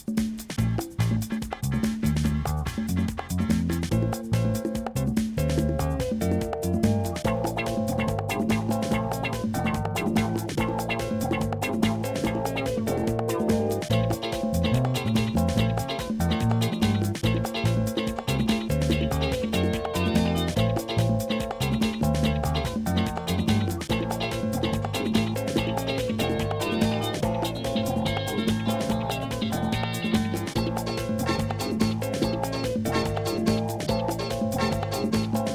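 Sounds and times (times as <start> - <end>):
smooth club music: 0.2 - 35.5.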